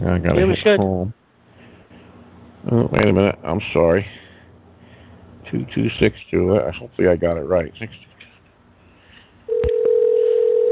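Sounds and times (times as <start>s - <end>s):
speech: 0.0s - 1.2s, 2.6s - 4.2s, 5.5s - 8.1s
telephone line ringing as a call is dialed: 9.5s - 10.7s.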